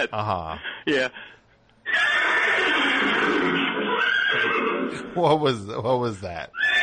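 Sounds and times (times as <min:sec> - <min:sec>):
speech: 0:00.0 - 0:06.8
electronic horse whinny sound effect from a toy whip: 0:01.8 - 0:05.2, 0:06.6 - 0:06.8.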